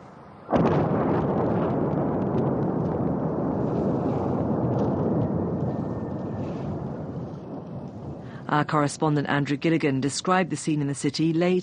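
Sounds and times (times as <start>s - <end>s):
explosion from a night bombing raid on a city: 0.5s - 8.6s
speech: 8.5s - 11.6s.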